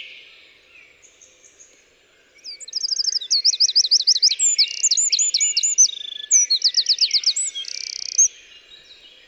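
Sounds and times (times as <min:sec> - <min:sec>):
Eurasian wren Troglodytes troglodytes singing: 0:02.4 - 0:08.3.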